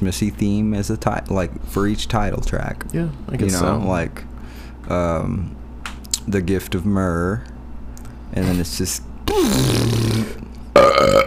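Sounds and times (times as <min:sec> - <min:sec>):
speech: 0:00.0 - 0:04.3, 0:04.9 - 0:05.6, 0:06.3 - 0:07.5, 0:08.3 - 0:11.2
loud burp with a deep rumbling tone: 0:09.3 - 0:11.2.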